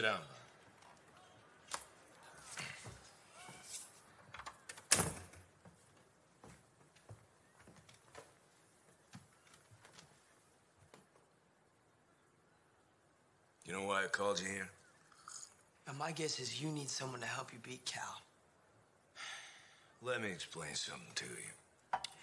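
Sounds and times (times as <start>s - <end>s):
speech: 0.0s - 0.3s, 13.7s - 14.8s, 15.9s - 18.3s, 20.0s - 22.0s
faint shuffling: 0.0s - 4.7s, 5.3s - 11.4s
door pushed shut with a solid thud: 4.7s - 5.5s.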